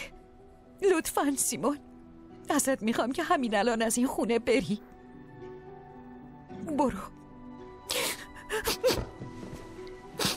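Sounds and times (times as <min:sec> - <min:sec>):
speech: 0:00.8 - 0:01.9, 0:02.5 - 0:04.9, 0:06.7 - 0:07.2
woman crying softly: 0:07.9 - 0:09.2
shaky sniffles: 0:10.1 - 0:10.3.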